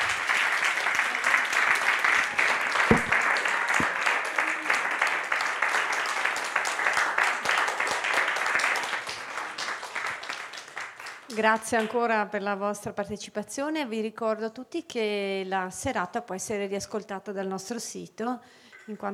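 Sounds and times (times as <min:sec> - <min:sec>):
audience applause at the close of an evening history talk: 0:00.0 - 0:11.3
speech: 0:11.4 - 0:19.1.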